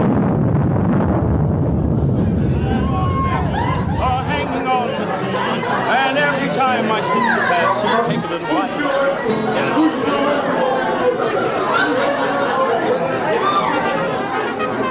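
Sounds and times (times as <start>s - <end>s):
low rumbling roar: 0.0s - 5.6s
crowd celebrating in the street chattering and calling out: 0.0s - 14.8s.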